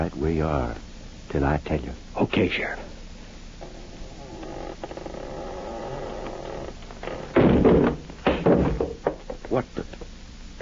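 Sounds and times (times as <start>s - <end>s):
speech: 0.0s - 2.9s
low hiss: 0.0s - 10.6s
short scraping rumble of a door being forced open: 3.7s - 8.2s
door forced open with heavy thumping bangs: 7.0s - 9.3s.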